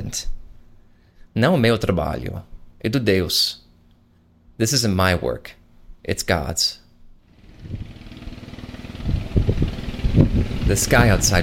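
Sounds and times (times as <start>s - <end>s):
speech: 0.1s - 0.4s, 1.4s - 3.6s, 4.6s - 6.8s, 10.7s - 11.4s
small boat motor running: 7.3s - 11.4s.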